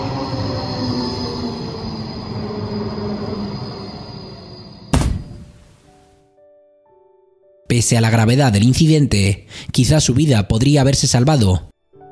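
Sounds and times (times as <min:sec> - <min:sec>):
tram rumbling past: 0:00.0 - 0:04.9
tram wheels squealing on rails: 0:00.0 - 0:04.9
loud bang: 0:04.9 - 0:05.8
speech: 0:07.8 - 0:11.7.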